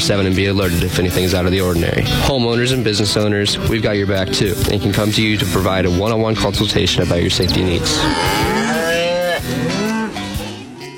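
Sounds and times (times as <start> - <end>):
speech: 0.0 - 8.6
cow mooing: 7.3 - 10.9.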